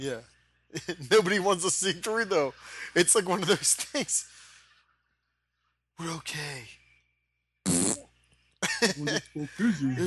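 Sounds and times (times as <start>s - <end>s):
speech: 0.0s - 4.4s, 6.0s - 6.8s, 8.8s - 10.0s
fart in a pool: 7.6s - 8.2s.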